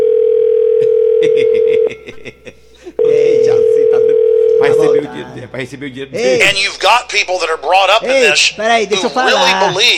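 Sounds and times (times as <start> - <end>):
telephone dial tone as a call is placed: 0.0 - 1.9, 3.6 - 4.6
laughter: 0.8 - 3.0, 8.8 - 9.9
speech: 5.6 - 9.9.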